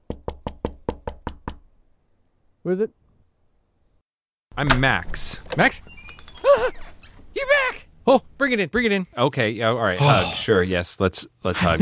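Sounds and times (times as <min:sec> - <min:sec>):
knocking on a door: 0:00.0 - 0:01.7
speech: 0:02.6 - 0:03.0, 0:04.6 - 0:07.5, 0:08.1 - 0:11.8.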